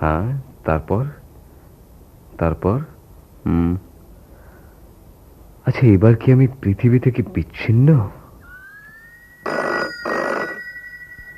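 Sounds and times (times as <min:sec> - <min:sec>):
speech: 0:00.0 - 0:01.2, 0:02.4 - 0:03.9, 0:05.6 - 0:08.2
faint steady hum: 0:00.0 - 0:11.3
telephone ringing in bright electronic bursts: 0:08.4 - 0:11.3.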